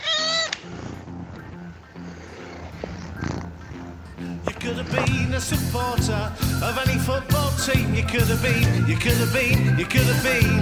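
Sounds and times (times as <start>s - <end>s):
cat meowing: 0.0s - 0.6s
speech: 4.7s - 10.5s.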